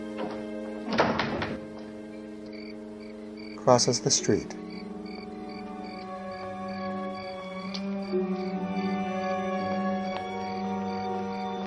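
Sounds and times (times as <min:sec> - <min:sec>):
steady humming musical drone: 0:00.0 - 0:11.6
door shutting with a solid thunk: 0:00.1 - 0:01.6
speech: 0:03.6 - 0:04.6.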